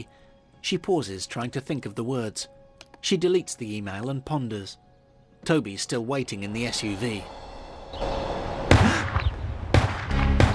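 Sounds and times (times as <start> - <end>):
speech: 0.0 - 4.8, 5.4 - 8.1
gunshots: 8.7 - 10.5.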